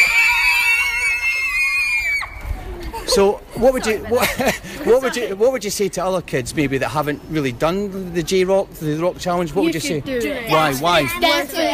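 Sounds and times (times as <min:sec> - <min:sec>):
group of children screaming in celebration: 0:00.0 - 0:02.6
laughter: 0:02.7 - 0:05.5
speech: 0:03.2 - 0:11.7.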